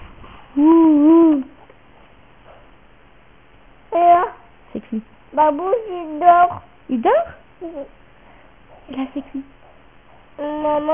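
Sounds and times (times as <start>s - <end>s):
speech: 0.6s - 1.5s, 5.0s - 8.0s, 8.9s - 9.6s, 10.4s - 10.9s
child imitating an owl hooting: 0.6s - 1.6s.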